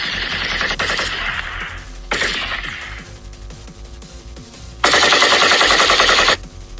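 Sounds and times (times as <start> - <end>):
bursts of rapid crackling gunfire at a university: 0.0 - 3.1, 4.8 - 6.4.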